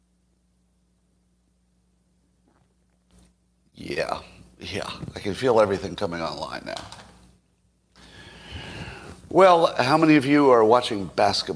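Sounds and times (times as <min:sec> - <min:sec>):
quiet steady hum: 0:00.0 - 0:11.5
sip of coffee from a cup: 0:02.4 - 0:03.3
speech: 0:03.8 - 0:07.0, 0:09.3 - 0:11.5.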